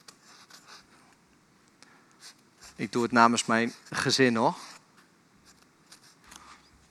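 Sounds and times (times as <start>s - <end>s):
pen writing a name: 0.0s - 1.0s, 2.2s - 6.5s
speech: 2.8s - 4.6s.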